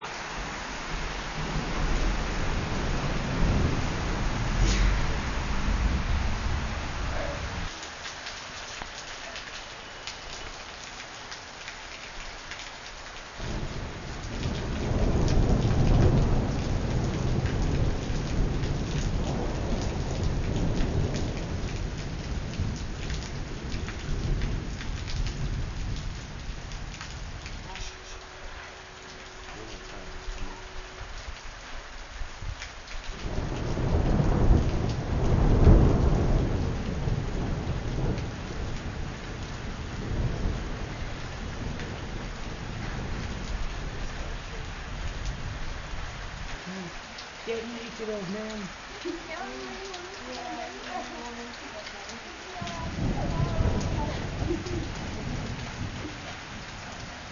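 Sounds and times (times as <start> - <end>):
rain during a lightning storm in Nepal: 0.0 - 57.2
thunder from a lightning storm in Nepal: 0.9 - 7.7, 13.4 - 27.6, 33.2 - 46.4, 52.6 - 57.2.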